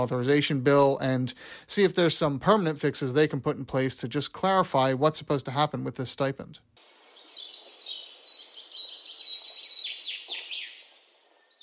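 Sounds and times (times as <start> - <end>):
speech: 0.0 - 6.8
chorus of high twittering bird chirps and trills as a segment transition effect: 6.8 - 11.6.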